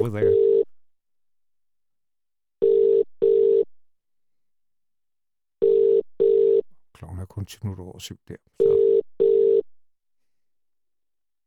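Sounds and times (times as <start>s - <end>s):
speech: 0.0s - 0.5s, 7.0s - 8.8s
British telephone ringing tone heard through the line: 2.6s - 3.6s, 5.6s - 6.6s, 8.6s - 9.6s.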